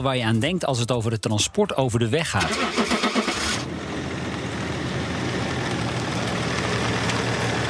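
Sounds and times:
speech: 0.0s - 3.1s
heavy truck engine starting and idling: 2.0s - 7.6s.

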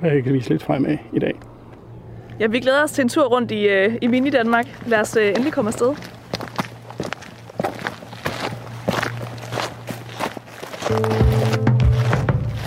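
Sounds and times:
speech: 0.0s - 1.5s, 2.4s - 6.2s
low steady hum: 0.0s - 10.0s
footsteps of people walking from a harbour onto a salt meadow on Livø, Denmark: 1.3s - 12.6s.

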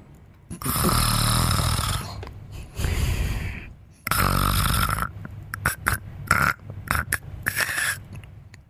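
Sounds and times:
person imitating a man's snoring with rasping snorts: 0.5s - 2.2s, 4.0s - 7.9s.

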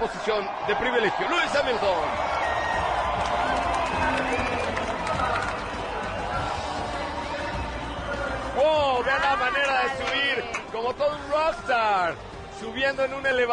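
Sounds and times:
large crowd roaring and cheering at a race: 0.0s - 13.5s
speech: 0.2s - 2.4s, 8.6s - 13.5s.

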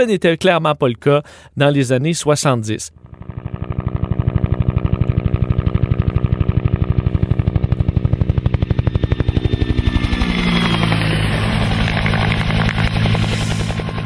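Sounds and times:
speech: 0.0s - 3.3s
Bell UH-1B Huey helicopter rotor blades chopping and turbine whining: 2.9s - 14.0s.

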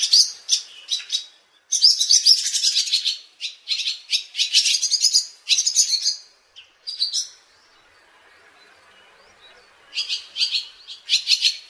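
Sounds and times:
Barn Swallow twittering: 0.0s - 11.6s.

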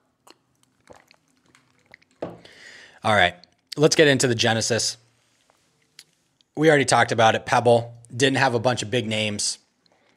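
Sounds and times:
soft wet mouth clicks: 0.0s - 2.2s
person sipping water: 0.0s - 3.8s
bottle clunk: 2.2s - 2.5s
speech: 3.0s - 5.0s, 6.6s - 9.6s.

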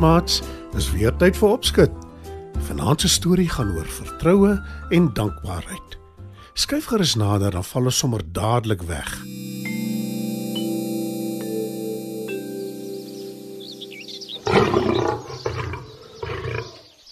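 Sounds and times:
speech: 0.0s - 2.0s, 2.6s - 5.9s, 6.6s - 9.3s
sustained musical tones: 9.1s - 15.1s
lion roaring: 14.4s - 17.0s.

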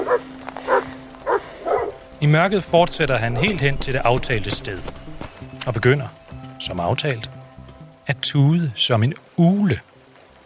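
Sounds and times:
patrol dogs barking: 0.0s - 2.1s, 2.7s - 5.2s
speech: 0.1s - 0.4s, 2.2s - 5.0s, 5.6s - 7.4s, 8.1s - 9.9s.

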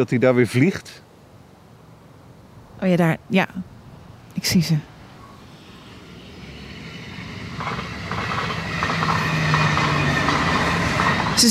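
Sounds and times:
speech: 0.0s - 1.1s, 2.8s - 3.7s, 4.4s - 4.9s, 11.4s - 11.5s
train passing on a railway line beside an open nature area: 1.1s - 11.5s
train wheels clattering rhythmically on a railway line: 5.2s - 11.5s.

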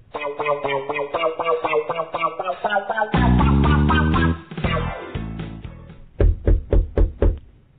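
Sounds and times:
music: 0.0s - 6.6s
crisp knocks on the wooden door of a little toadstool house: 6.2s - 7.4s.

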